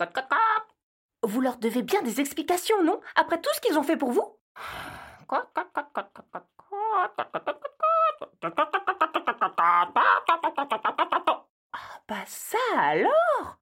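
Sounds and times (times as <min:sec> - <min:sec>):
speech: 0:00.0 - 0:00.2, 0:01.3 - 0:07.7, 0:08.4 - 0:08.9, 0:09.6 - 0:11.0, 0:11.8 - 0:13.6
voice imitating hens clucking: 0:00.0 - 0:00.8, 0:05.3 - 0:11.5.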